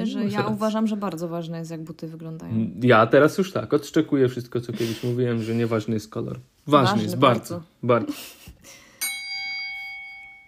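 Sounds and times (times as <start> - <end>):
speech: 0.2 - 8.8
bright bell strike: 9.0 - 10.4.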